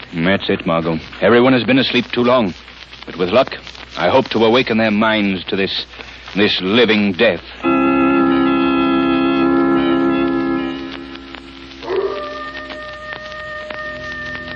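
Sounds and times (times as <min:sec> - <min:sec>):
steady hiss like rain or wind: 0:00.0 - 0:14.5
speech: 0:00.1 - 0:07.8
coyote howling in the distant hills: 0:11.8 - 0:14.5.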